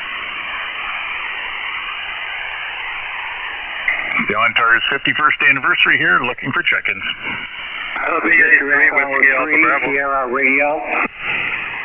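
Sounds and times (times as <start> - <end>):
crackling amateur radio signal: 0.0 - 11.8
two voices talking over each other on a narrowband amateur radio channel: 3.9 - 11.2
speech: 4.3 - 11.5.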